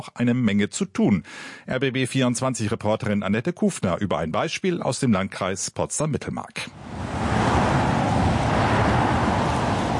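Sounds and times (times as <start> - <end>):
speech: 0.0 - 7.6
cars passing a roundabout: 6.7 - 9.9.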